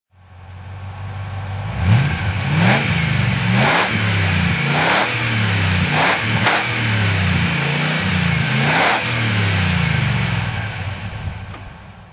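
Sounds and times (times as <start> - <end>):
Morgan 8 car with original exhaust revving on the throttle: 0.5 - 12.1.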